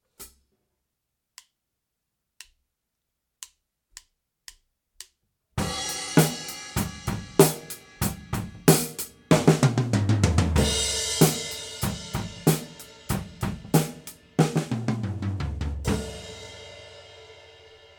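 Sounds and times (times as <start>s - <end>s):
drums recorded with overhead microphone without effects: 5.6s - 17.9s.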